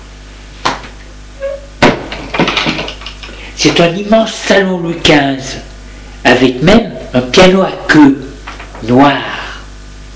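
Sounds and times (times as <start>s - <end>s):
double door creaking: 1.4s - 1.8s
double door panels thudding and rattling as they swing open: 1.8s - 3.0s
speech: 3.6s - 8.2s, 8.8s - 9.3s.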